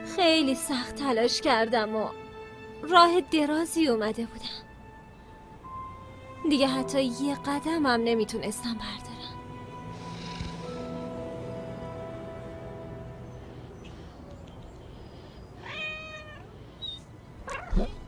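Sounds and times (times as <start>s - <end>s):
speech: 0.1s - 2.2s, 2.8s - 4.6s, 6.4s - 9.2s
cat meowing: 15.6s - 18.0s.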